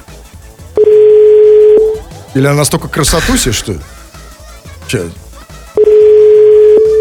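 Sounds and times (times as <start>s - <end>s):
telephone ringback tone while calling: 0.8s - 2.0s, 5.8s - 6.9s
speech: 2.4s - 4.0s, 4.9s - 5.2s.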